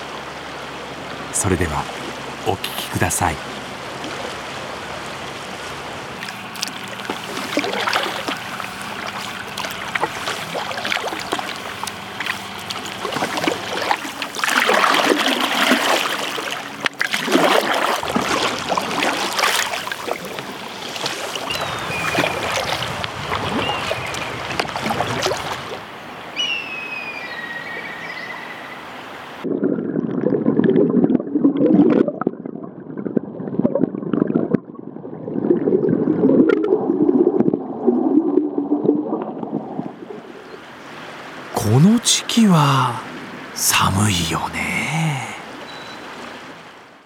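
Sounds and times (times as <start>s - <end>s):
steady flowing water of a clear river: 0.0s - 26.3s, 28.8s - 47.0s
speech: 1.4s - 3.6s
kayak paddles splashing and dipping on a clear river: 3.4s - 25.9s
heavier splash in a river: 6.6s - 20.3s
faint bird chirps: 26.4s - 28.9s.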